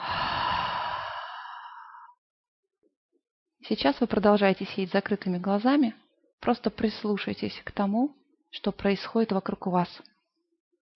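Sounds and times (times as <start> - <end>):
deep breath with noisy exhale through the mouth: 0.0 - 2.0
speech: 3.7 - 10.1.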